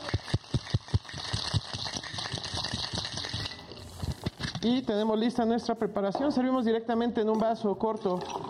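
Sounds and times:
cocktail shaker with ice and pineapple juice and agave syrup being shaken: 0.0s - 5.1s
speech: 4.6s - 8.4s.

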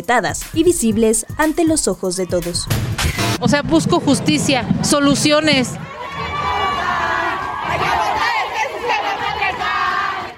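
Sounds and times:
speech: 0.0s - 5.9s
large crowd of women shouting and chanting at a protest march: 5.7s - 10.3s.

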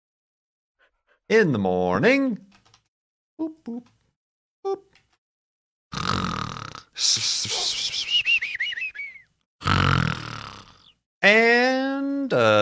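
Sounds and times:
speech: 1.3s - 2.6s, 3.4s - 4.0s, 4.6s - 4.9s, 7.0s - 8.1s, 11.2s - 12.6s
person imitating snoring: 5.9s - 7.8s, 9.6s - 11.0s.

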